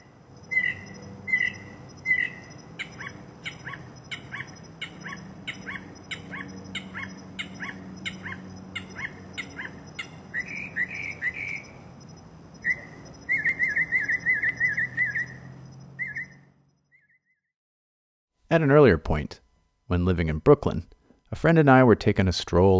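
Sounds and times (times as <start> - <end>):
male mockingbird singing varied repeated phrases: 0.0 - 16.4
faint hum: 0.0 - 16.8, 18.4 - 22.7
speech: 18.6 - 22.7.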